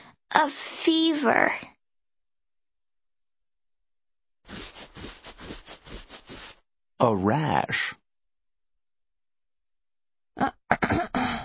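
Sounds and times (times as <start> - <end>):
speech: 0.4 - 1.7, 7.0 - 8.0, 10.4 - 11.1
person with a sore throat clearing throat: 10.4 - 11.4
person with a sore throat coughing: 10.4 - 11.4.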